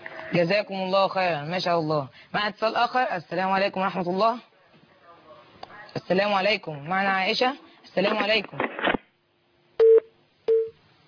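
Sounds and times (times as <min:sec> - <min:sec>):
speech: 0:00.3 - 0:04.5, 0:06.0 - 0:08.7
telephone line tone beeps after a call is cut off: 0:09.8 - 0:10.8.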